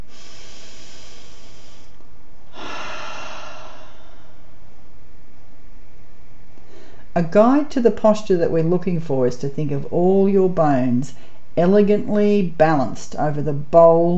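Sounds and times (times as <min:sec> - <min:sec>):
deep slow breathing in and out: 0:00.0 - 0:04.8, 0:06.6 - 0:07.1
speech: 0:07.2 - 0:14.1.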